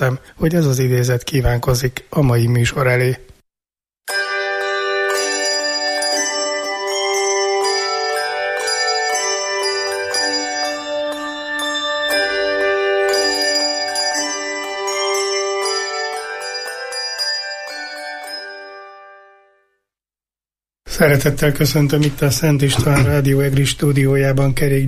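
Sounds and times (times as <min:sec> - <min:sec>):
speech: 0:00.0 - 0:03.3, 0:21.0 - 0:24.8
church bells pealing in church towers: 0:04.1 - 0:19.4.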